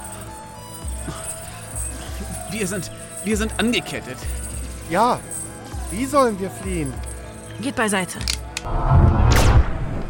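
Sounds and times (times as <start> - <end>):
speech: 2.5 - 5.3, 5.9 - 9.2
gunshot: 9.0 - 10.0.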